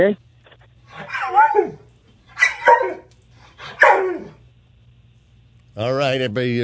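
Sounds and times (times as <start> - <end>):
speech: 0.0 - 0.2, 0.9 - 1.8, 5.8 - 6.6
dog barking whiny barks: 0.9 - 4.4.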